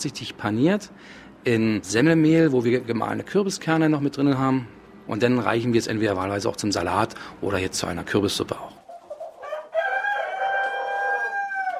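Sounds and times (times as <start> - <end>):
speech: 0.0 - 8.8
chickens clucking on an organic farm: 8.7 - 11.7
rooster crowing on an organic farm: 9.4 - 11.7.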